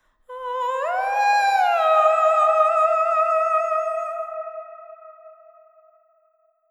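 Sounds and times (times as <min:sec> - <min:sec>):
person singing: 0:00.3 - 0:04.9.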